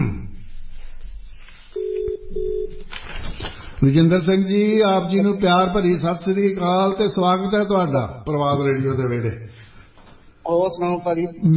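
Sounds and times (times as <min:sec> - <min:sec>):
telephone ringback tone of an outgoing call: 0:01.8 - 0:02.8
speech: 0:03.8 - 0:09.6, 0:10.5 - 0:11.5.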